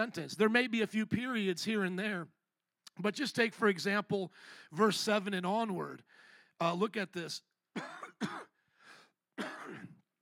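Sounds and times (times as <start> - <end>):
speech: 0.0 - 2.4, 3.0 - 8.4
preacher clearing troubled throat: 7.8 - 8.6, 9.4 - 10.0
preacher coughing: 7.8 - 8.6, 9.4 - 10.0.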